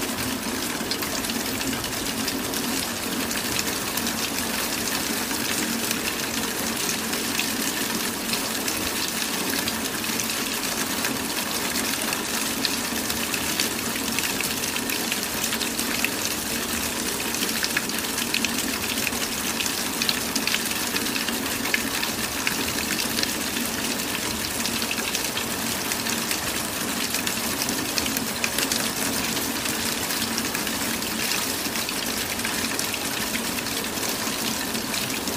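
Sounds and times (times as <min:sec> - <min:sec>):
falling rain: 0:00.0 - 0:35.3.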